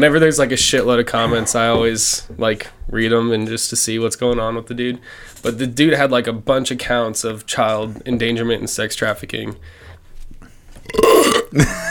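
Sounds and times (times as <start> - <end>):
speech: 0.0 - 9.9, 10.9 - 11.8
loud burp: 10.9 - 11.7.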